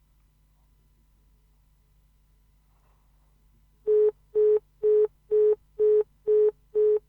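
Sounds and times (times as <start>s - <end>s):
telephone busy tone after a caller has hung up: 3.9s - 7.0s.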